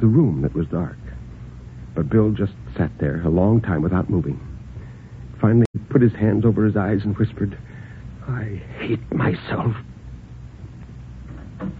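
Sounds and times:
speech: 0:00.0 - 0:01.1, 0:02.0 - 0:04.5, 0:05.4 - 0:09.9
steady low rumble of room noise: 0:00.0 - 0:11.7
door opening: 0:11.2 - 0:11.7.

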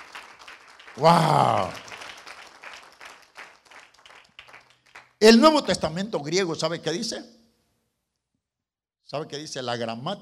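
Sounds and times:
audience applauding: 0:00.0 - 0:05.6
speech: 0:01.0 - 0:01.8, 0:05.2 - 0:07.4, 0:09.1 - 0:10.2.

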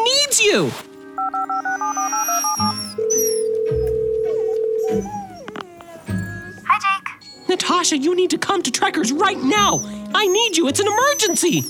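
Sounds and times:
speech: 0:00.4 - 0:00.9, 0:07.7 - 0:11.6
touch-tone beeps of a telephone number being dialed: 0:01.2 - 0:04.9.

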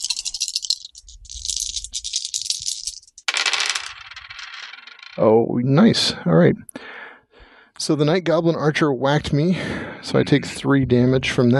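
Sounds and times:
dice rattling in a cupped hand or shaker: 0:00.0 - 0:05.2
speech: 0:05.2 - 0:06.8, 0:07.9 - 0:11.5.

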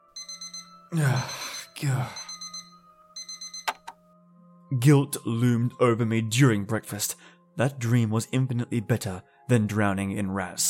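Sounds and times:
electronic alarm clock beeping: 0:00.0 - 0:04.0
speech: 0:00.9 - 0:02.2, 0:04.7 - 0:10.6.

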